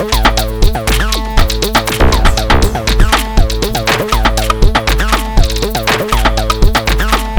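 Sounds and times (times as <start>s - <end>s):
electronic drums: 0.2s - 7.3s
kick drum boosted with bass synthesizer: 2.0s - 4.0s.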